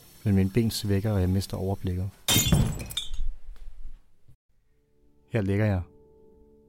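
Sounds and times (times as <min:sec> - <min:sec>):
speech: 0:00.2 - 0:02.6, 0:05.3 - 0:05.9
drinking glass of water shattering on a hard kitchen floor: 0:02.3 - 0:03.4.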